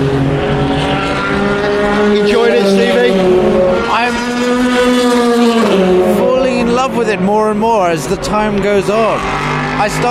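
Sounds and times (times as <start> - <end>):
racing car engines roaring: 0.0 - 10.0
speech: 7.1 - 10.0.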